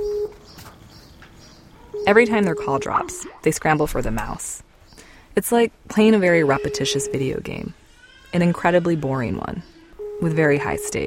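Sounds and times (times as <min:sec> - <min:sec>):
Skype electronic call tone: 0:00.0 - 0:00.4, 0:02.0 - 0:03.3, 0:06.4 - 0:07.6, 0:10.0 - 0:11.0
speech: 0:02.1 - 0:04.7, 0:05.4 - 0:11.0.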